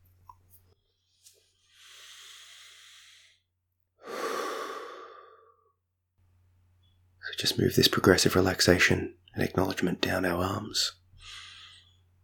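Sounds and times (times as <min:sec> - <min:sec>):
slow breaths during a guided relaxation session: 0:00.8 - 0:05.8, 0:11.2 - 0:12.2
speech: 0:07.4 - 0:11.4.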